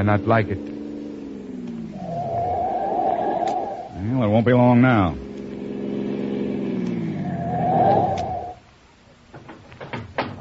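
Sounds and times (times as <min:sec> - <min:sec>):
speech: 0:00.0 - 0:00.8, 0:04.0 - 0:05.2
car engine roaring as it speeds up: 0:00.0 - 0:08.8
faint clicks: 0:00.5 - 0:02.3, 0:03.1 - 0:03.8, 0:06.7 - 0:07.0, 0:07.9 - 0:08.4.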